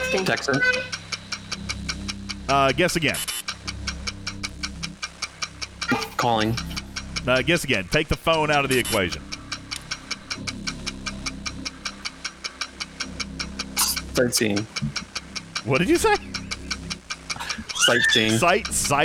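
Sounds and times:
game show countdown clock ticking: 0:00.0 - 0:19.0
speech: 0:00.1 - 0:01.0, 0:02.5 - 0:03.3, 0:06.2 - 0:09.3, 0:14.2 - 0:14.9, 0:15.6 - 0:16.2, 0:17.9 - 0:19.0.

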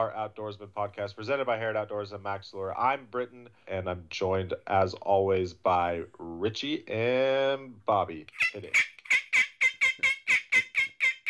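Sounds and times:
speech: 0:00.0 - 0:09.0
turkey call sounding raspy yelps mimicking a turkey: 0:08.3 - 0:11.2.

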